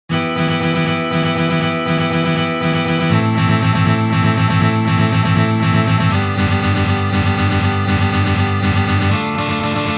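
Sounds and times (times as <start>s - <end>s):
Chechen strumming pattern on guitar: 0.1s - 9.9s.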